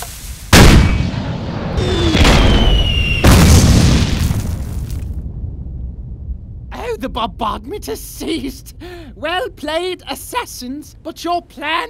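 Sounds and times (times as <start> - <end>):
dynamite explosions in a video game: 0.5 - 7.8
speech: 7.1 - 11.8.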